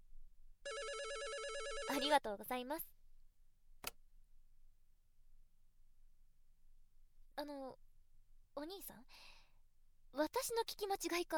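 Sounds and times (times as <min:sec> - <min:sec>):
room telephone ringing with electronic warble: 0:00.7 - 0:02.2
speech: 0:01.9 - 0:02.9, 0:07.4 - 0:07.8, 0:08.6 - 0:09.4, 0:10.1 - 0:11.3.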